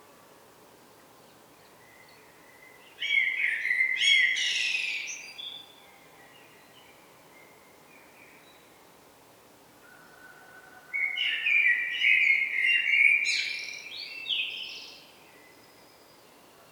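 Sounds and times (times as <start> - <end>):
common blackbird Turdus merula singing: 2.9 - 5.7, 11.0 - 15.0.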